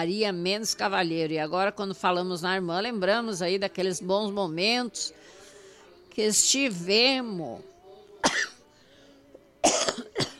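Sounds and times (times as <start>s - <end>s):
speech: 0.0s - 5.4s, 6.2s - 7.7s
person coughing: 8.2s - 8.6s, 9.6s - 10.3s.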